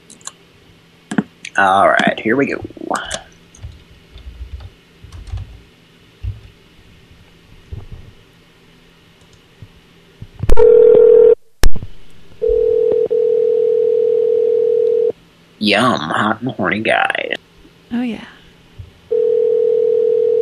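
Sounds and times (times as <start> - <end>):
speech: 1.6 - 3.2, 15.7 - 17.3, 17.9 - 18.3
telephone dial tone: 10.6 - 11.4, 12.4 - 15.1, 19.1 - 20.4.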